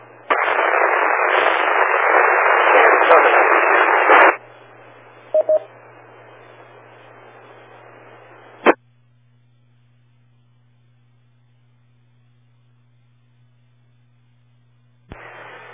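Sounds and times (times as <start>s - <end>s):
radio static hiss: 0.0s - 8.8s, 15.1s - 15.7s
low steady hum: 0.0s - 15.7s.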